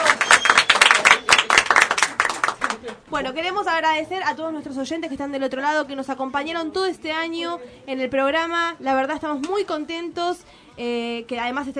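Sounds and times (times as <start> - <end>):
small group applauding a radio prize winner: 0.0 - 3.0
speech: 2.9 - 11.7.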